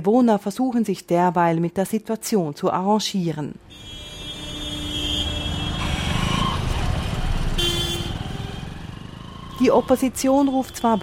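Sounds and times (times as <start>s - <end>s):
speech: 0.0s - 4.0s, 9.6s - 11.0s
engines rumbling in dense city street traffic in Dhaka Bangladesh: 3.6s - 11.0s
motorbikes buzzing in Dhaka street traffic: 3.6s - 11.0s
car horns honking in Dhaka street traffic: 3.7s - 8.8s, 10.2s - 11.0s.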